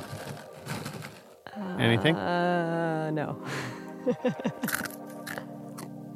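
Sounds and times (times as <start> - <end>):
crunching on crunchy chickpeas: 0.0 - 1.4, 4.6 - 5.9
laughter: 1.7 - 2.7, 3.5 - 4.8
speech: 1.8 - 4.9.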